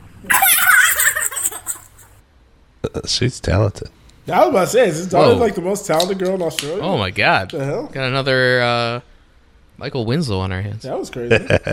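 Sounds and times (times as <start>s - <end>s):
girl imitating a magpie hit by a car with warbling squawks: 0.2s - 2.1s
laughter: 0.3s - 2.2s, 11.3s - 11.7s
speech: 2.8s - 9.1s, 9.8s - 11.7s.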